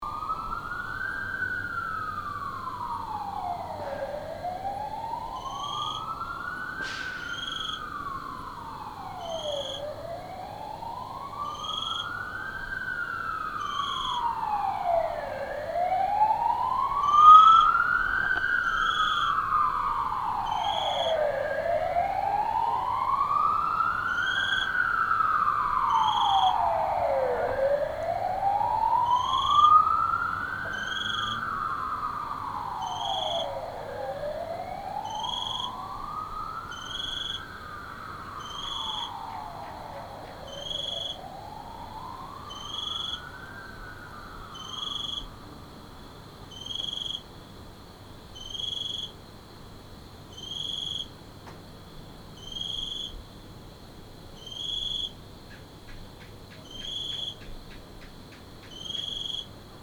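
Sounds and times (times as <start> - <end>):
sirens in a late night disturbance: 0.0 - 47.2
single cricket chirping: 0.1 - 59.8.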